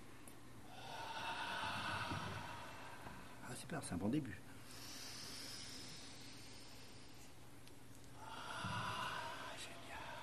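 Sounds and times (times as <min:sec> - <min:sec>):
deep breathing during a breathing exercise: 0:00.6 - 0:03.5, 0:04.5 - 0:07.5, 0:08.1 - 0:10.2
speech: 0:03.7 - 0:04.5.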